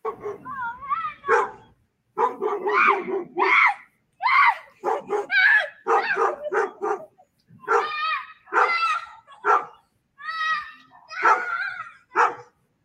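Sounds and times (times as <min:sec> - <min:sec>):
scared dog barking and yelping with whining and screechy cries: 0:00.0 - 0:00.6, 0:01.2 - 0:03.7, 0:04.8 - 0:09.8, 0:11.1 - 0:12.5.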